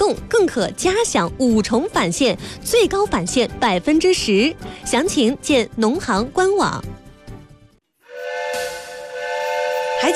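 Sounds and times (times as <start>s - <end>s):
speech: 0.1s - 7.0s, 10.0s - 10.1s
steam train whistle with breathy hiss: 8.0s - 10.1s.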